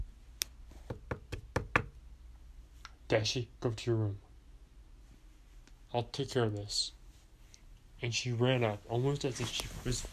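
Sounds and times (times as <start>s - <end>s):
knocking on a door: 0.9s - 1.9s
speech: 3.1s - 4.2s, 5.9s - 7.0s, 8.0s - 10.1s.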